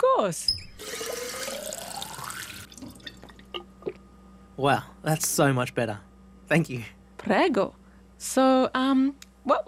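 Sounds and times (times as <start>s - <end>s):
speech: 0.0s - 1.2s, 4.6s - 9.6s
tap water filling a glass: 0.8s - 3.5s.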